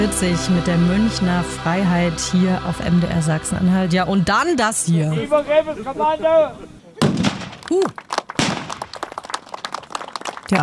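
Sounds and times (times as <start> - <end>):
speech: 0.0 - 6.8, 7.7 - 8.1, 10.5 - 10.6
heavy cannon blasts with rumbling crackling tail: 7.0 - 7.6, 8.4 - 8.8.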